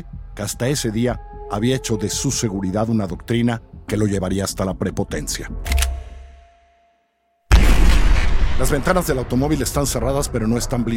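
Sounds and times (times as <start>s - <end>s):
speech: 0.0s - 5.7s, 8.6s - 10.9s
sharp gunshot: 7.5s - 9.5s.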